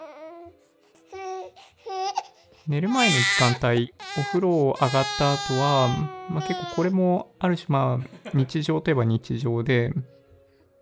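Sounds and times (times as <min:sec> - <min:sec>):
baby crying after a bath before bedtime: 0:00.0 - 0:07.0
speech: 0:02.6 - 0:10.1.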